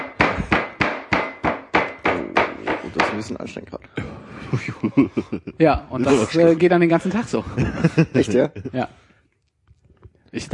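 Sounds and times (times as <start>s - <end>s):
mallet pounding meat flat for schnitzel: 0.0s - 3.2s
speech: 3.2s - 9.0s, 10.3s - 10.5s
laughter: 4.0s - 9.0s.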